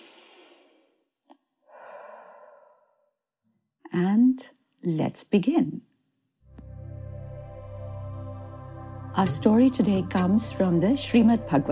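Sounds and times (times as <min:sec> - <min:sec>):
deep breath: 0:01.6 - 0:03.1
speech: 0:04.0 - 0:05.9, 0:09.2 - 0:11.7.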